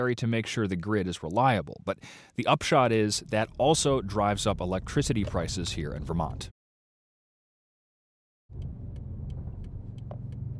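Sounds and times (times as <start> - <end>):
speech: 0.0 - 6.6
car engine and road rumble driving on a highway: 2.9 - 6.5, 8.5 - 10.5.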